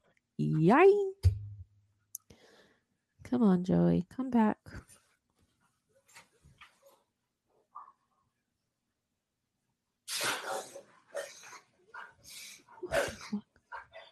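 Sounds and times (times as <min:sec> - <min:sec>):
speech: 0:00.4 - 0:01.3, 0:03.3 - 0:04.8
dog sneezing: 0:10.1 - 0:11.6, 0:12.8 - 0:13.3.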